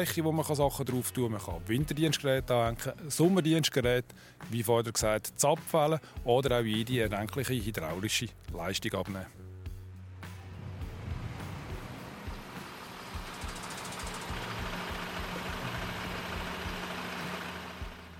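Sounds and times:
speech: 0:00.0 - 0:09.4
Unimog agricultural tractor engine idling: 0:10.4 - 0:18.1.

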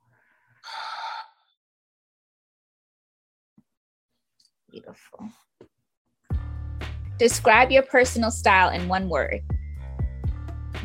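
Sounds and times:
group exhaling deeply during a guided breathing exercise: 0:00.6 - 0:01.4
speech: 0:04.7 - 0:05.7, 0:07.2 - 0:09.6.

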